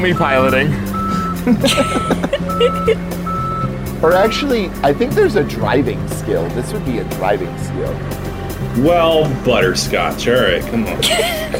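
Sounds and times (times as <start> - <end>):
forklift reversing alarm beeping: 0.0 - 1.4, 2.0 - 4.6
speech: 0.0 - 3.2, 4.0 - 8.2, 8.8 - 11.5
forklift engine: 0.0 - 11.5
laughter: 1.1 - 3.0, 10.9 - 11.5.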